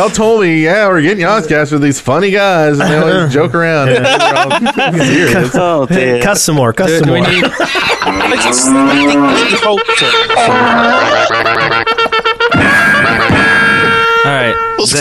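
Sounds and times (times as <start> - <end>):
speech: 0.0 - 12.0, 14.2 - 14.9
laughter: 2.6 - 14.2
cow-like moo with wavering pitch: 7.9 - 11.9
bright brassy cavalry charge fanfare with clatter: 11.9 - 14.9.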